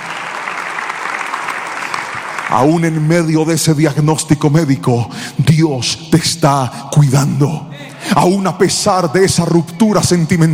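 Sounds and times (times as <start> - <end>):
crowd applauding: 0.0 - 3.1
speech: 2.5 - 10.5.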